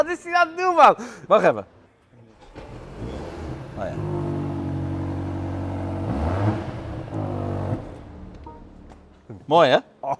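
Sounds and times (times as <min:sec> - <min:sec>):
speech: 0:00.0 - 0:01.8, 0:03.8 - 0:04.2, 0:09.4 - 0:10.1
hybrid car combustion engine idling and revving: 0:02.3 - 0:09.2.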